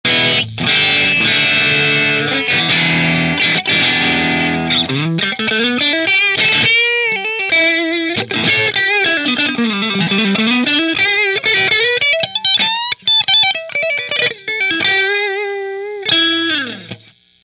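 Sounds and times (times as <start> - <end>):
electric guitar in pickup position one through amplifier: 0.0 - 17.4.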